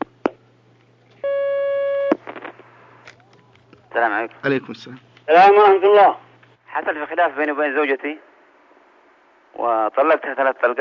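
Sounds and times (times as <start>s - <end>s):
telephone line tone for an incoming call: 1.2s - 2.8s
speech: 4.0s - 6.2s, 6.8s - 8.3s, 9.5s - 10.7s.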